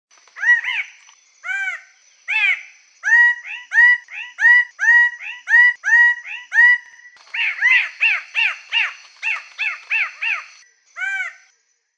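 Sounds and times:
bird singing slurred notes: 0:02.4 - 0:11.4.

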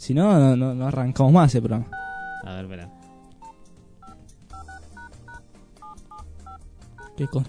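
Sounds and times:
speech: 0:00.0 - 0:03.0, 0:07.2 - 0:07.4
telephone keypad tones as a number is dialed to place a call: 0:01.9 - 0:02.4, 0:03.4 - 0:07.4.

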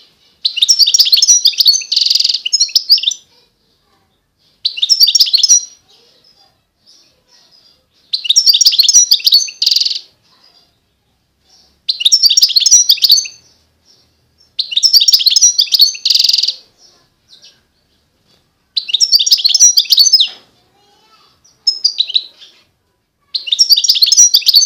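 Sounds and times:
wild European goldfinch singing: 0:00.3 - 0:03.4, 0:04.6 - 0:10.6, 0:11.5 - 0:18.0, 0:18.8 - 0:20.4, 0:21.4 - 0:22.6, 0:23.4 - 0:24.6.

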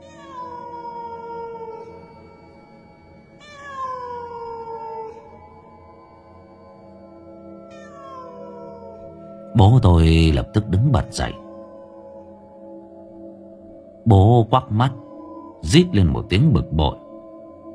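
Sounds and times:
cat yowling behind the house: 0:00.0 - 0:05.7, 0:07.6 - 0:09.5, 0:11.0 - 0:12.4
speech: 0:09.6 - 0:11.4, 0:14.1 - 0:15.0, 0:15.6 - 0:17.0.

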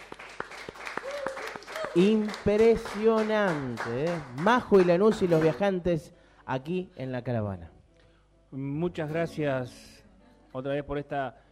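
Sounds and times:
small audience clapping at a live music night: 0:00.0 - 0:05.8
speech: 0:02.0 - 0:07.8, 0:08.5 - 0:09.9, 0:10.5 - 0:11.4.

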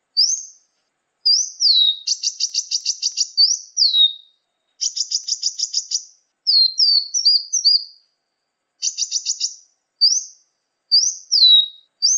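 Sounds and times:
sunbird song: 0:00.0 - 0:12.1.

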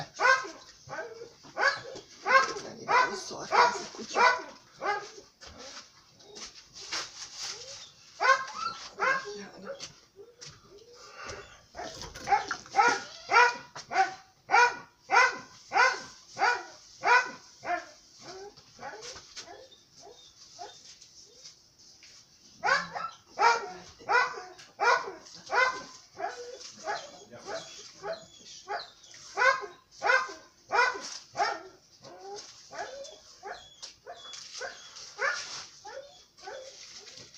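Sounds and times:
dog barking: 0:00.1 - 0:05.2, 0:08.2 - 0:09.9, 0:11.7 - 0:20.7, 0:22.6 - 0:36.7
dog yipping: 0:00.2 - 0:10.4, 0:11.4 - 0:20.9, 0:22.6 - 0:37.3.

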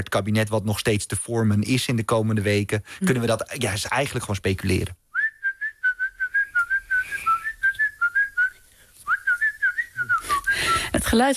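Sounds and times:
speech: 0:00.0 - 0:05.0, 0:11.0 - 0:11.3
person whistling a tune: 0:05.2 - 0:10.9.

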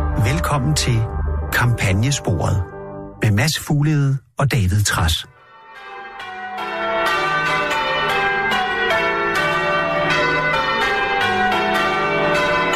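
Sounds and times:
church bells pealing: 0:00.0 - 0:03.2, 0:05.1 - 0:12.7
speech: 0:00.2 - 0:05.3.

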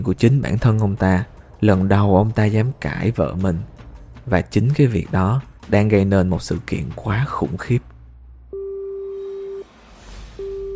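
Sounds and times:
speech: 0:00.0 - 0:07.9
telephone ringing with electronic beeps: 0:08.6 - 0:09.6, 0:10.4 - 0:10.7.

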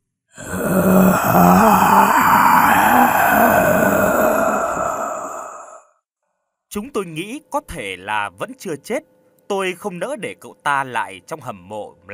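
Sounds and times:
wounded man moaning in a long sustained groan: 0:00.4 - 0:05.8
speech: 0:00.8 - 0:01.8, 0:06.8 - 0:12.1.

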